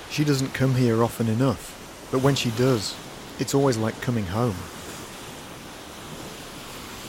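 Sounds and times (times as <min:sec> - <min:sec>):
surf washing along a beach shoreline with icy water: 0:00.0 - 0:07.0
speech: 0:00.2 - 0:04.8.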